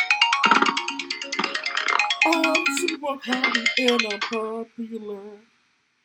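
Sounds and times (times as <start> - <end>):
melodic electronic phone ringtone for an incoming call: 0.0 - 4.3
speech: 2.3 - 5.5.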